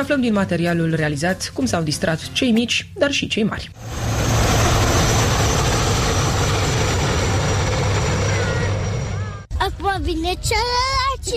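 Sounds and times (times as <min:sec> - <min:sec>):
speech: 0:00.0 - 0:04.2, 0:10.0 - 0:11.3
propeller airplane droning over the town aerodrome in Târgu Mureș Romania: 0:03.8 - 0:09.5.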